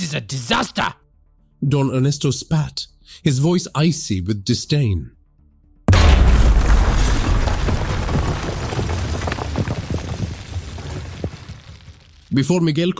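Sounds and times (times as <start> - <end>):
speech: 0.1 - 1.0, 1.6 - 5.2, 12.3 - 12.9
powerful explosion with deep boom: 5.9 - 12.3
scattered debris-like pops: 5.9 - 12.4.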